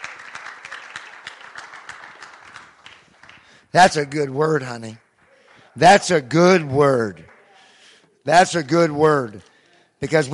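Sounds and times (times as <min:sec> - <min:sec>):
church audience clapping: 0:00.0 - 0:08.1
speech: 0:03.7 - 0:05.0, 0:05.8 - 0:07.3, 0:08.2 - 0:10.3.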